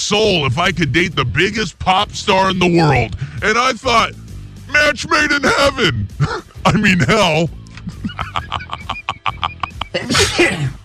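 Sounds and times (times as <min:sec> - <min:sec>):
speech: 0:00.1 - 0:04.2, 0:04.8 - 0:07.6
person laughing in short choppy laughs: 0:05.4 - 0:10.5
person sneezing: 0:10.0 - 0:10.8.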